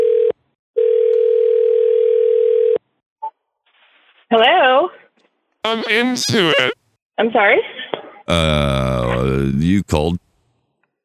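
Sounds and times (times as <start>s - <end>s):
phone line ringback tone: 0.8s - 2.8s
speech: 4.3s - 5.0s, 5.6s - 10.2s.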